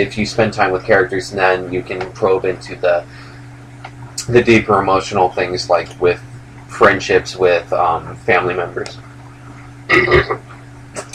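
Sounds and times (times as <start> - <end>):
speech: 0.0 - 3.2, 4.3 - 9.1, 9.9 - 10.5
low hum: 0.0 - 11.1
throaty burp after drinking stout: 9.9 - 10.4.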